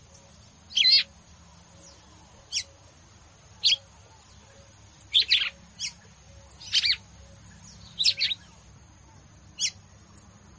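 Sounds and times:
faint continuous whine: 0:00.0 - 0:10.5
female red-cowled cardinal squeaky chattering song: 0:04.5 - 0:08.6, 0:09.6 - 0:09.8.

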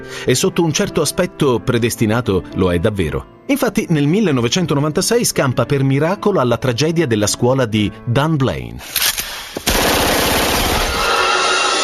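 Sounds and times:
speech: 0:00.0 - 0:09.1
automatic gunfire sound effect depicting a shooting at an elementary school: 0:09.6 - 0:11.2.

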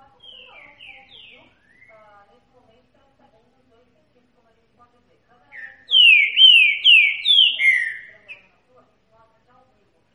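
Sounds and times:
green-winged saltator singing in the Bahian catingueiro song style: 0:00.2 - 0:02.0, 0:05.5 - 0:08.5.

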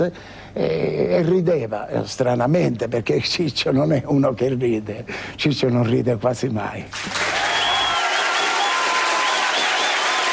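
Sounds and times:
speech: 0:00.0 - 0:07.3
audience applauding after a comedy duo's first performance in Castelvetrano: 0:07.0 - 0:10.3.

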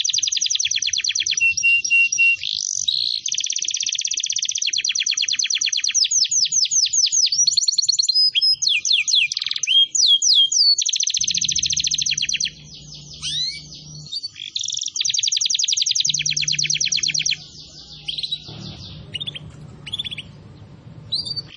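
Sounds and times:
canary song used as a lure to attract birds: 0:00.0 - 0:21.5
faint low hum: 0:11.2 - 0:14.2, 0:16.0 - 0:21.5.

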